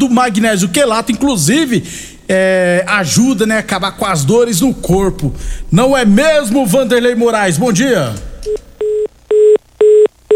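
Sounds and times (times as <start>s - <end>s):
speech: 0.0s - 8.6s
telephone busy tone after a dropped call: 8.5s - 10.3s.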